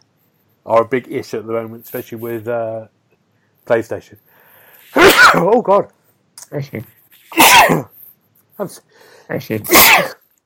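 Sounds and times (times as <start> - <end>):
speech: 0.7 - 3.0, 3.7 - 4.3, 5.0 - 7.9, 8.6 - 10.2
loud sneezes with voiced gasping build-up: 4.9 - 5.6, 7.3 - 8.0, 9.7 - 10.2.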